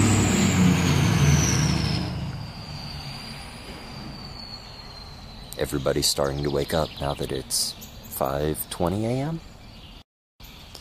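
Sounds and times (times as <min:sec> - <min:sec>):
motor vehicle passing by outside: 0:00.0 - 0:05.4
speech: 0:05.6 - 0:09.5.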